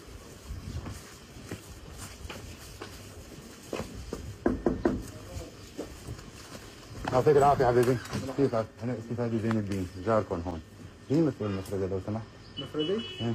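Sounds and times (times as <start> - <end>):
low noise: 0.0 - 13.3
man knocking on a door: 4.1 - 5.1
speech: 7.1 - 13.3.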